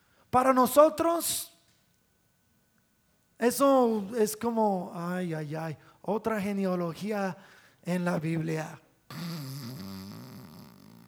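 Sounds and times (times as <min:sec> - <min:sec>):
speech: 0:00.3 - 0:01.5, 0:03.4 - 0:09.4
person imitating snoring: 0:09.1 - 0:11.0.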